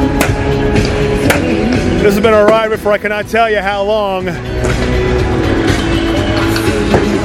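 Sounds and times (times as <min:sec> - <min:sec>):
hockey pucks banging off rink boards: 0:00.2 - 0:02.9, 0:05.7 - 0:07.2
speech: 0:02.1 - 0:05.5.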